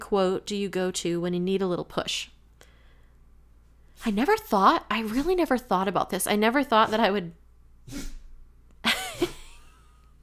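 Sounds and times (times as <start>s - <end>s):
speech: 0.1s - 2.4s, 4.0s - 8.2s
dog sneezing: 7.8s - 8.4s
laughter: 8.9s - 9.8s.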